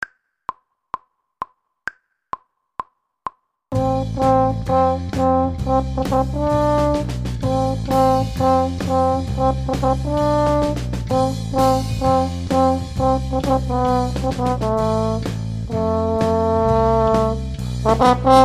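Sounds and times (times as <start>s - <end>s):
horn section playing: 3.7s - 18.4s.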